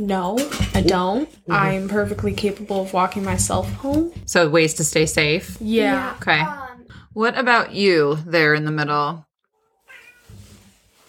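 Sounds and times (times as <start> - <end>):
speech: 0.0 - 9.3
low rumbling murmur: 1.6 - 8.3
cat meowing: 9.6 - 10.4.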